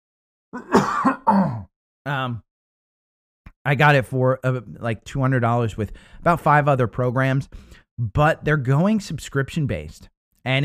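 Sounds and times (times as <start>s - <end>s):
speech: 0.5s - 2.5s, 3.6s - 10.6s
person clearing their throat: 0.6s - 1.7s.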